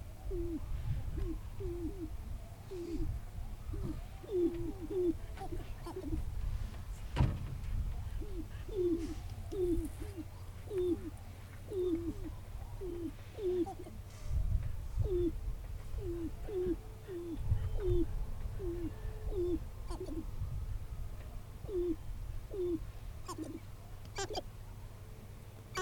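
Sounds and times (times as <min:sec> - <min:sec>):
sharp-tailed grouse lekking clucking calls in tall prairie grasslands: 0:00.0 - 0:20.5, 0:21.1 - 0:24.6, 0:25.6 - 0:25.7
rumbling wind: 0:00.0 - 0:25.7
sharp thump: 0:07.1 - 0:08.0.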